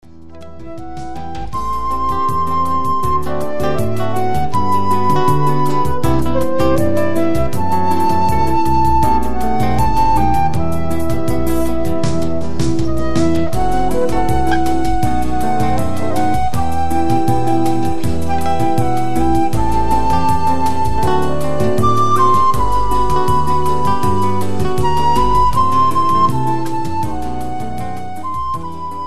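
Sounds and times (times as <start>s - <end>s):
modal harmony music: 0.0s - 29.0s.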